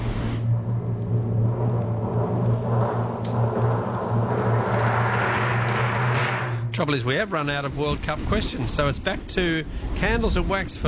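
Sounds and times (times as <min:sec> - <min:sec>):
broadband road rumble from a truck: 0:00.4 - 0:06.8
truck engine hum while cruising at constant speed: 0:00.4 - 0:06.8
speech: 0:06.8 - 0:10.8.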